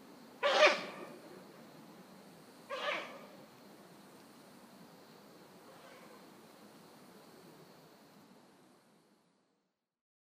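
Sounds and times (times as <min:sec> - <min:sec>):
steady background hiss: 0:00.0 - 0:10.0
Ural owl giving harsh raspy screeching calls: 0:00.4 - 0:01.1, 0:02.7 - 0:03.3.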